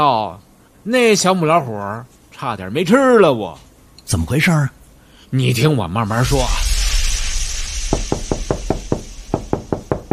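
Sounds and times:
speech: 0:00.0 - 0:06.7
steady hiss: 0:00.0 - 0:10.1
knocking on a door: 0:07.9 - 0:10.1.

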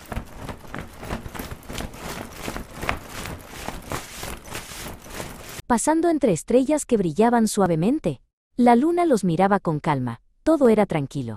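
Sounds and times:
horse hooves clip-clopping: 0:00.0 - 0:05.6
speech: 0:05.7 - 0:11.3.

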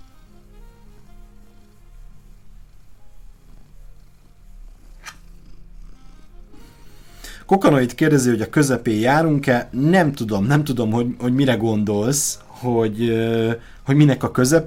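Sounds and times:
cat purring: 0:00.0 - 0:14.6
sharp click: 0:05.0 - 0:05.2
speech: 0:07.5 - 0:14.6.

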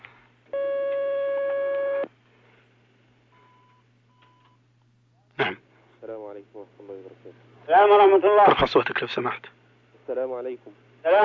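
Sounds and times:
faint low hum: 0:00.0 - 0:11.2
telephone line tone of an incoming call: 0:00.6 - 0:02.1
speech: 0:06.3 - 0:11.2.

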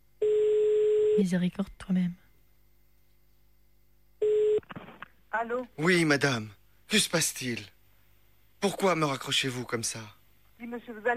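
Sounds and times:
speech: 0:01.2 - 0:02.2, 0:05.4 - 0:07.8, 0:08.6 - 0:11.1
telephone beep from a redialed call: 0:04.2 - 0:04.6.

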